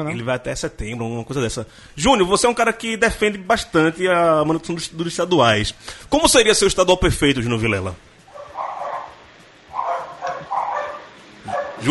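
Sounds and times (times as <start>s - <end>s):
speech: 0.0s - 8.1s
several dogs barking over a phone call: 8.3s - 11.8s.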